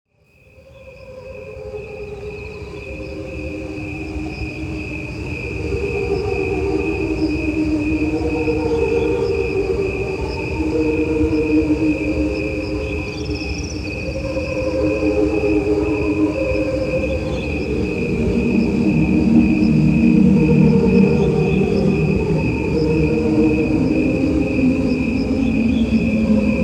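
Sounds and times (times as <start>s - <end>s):
crickets chirping: 0.2s - 26.6s.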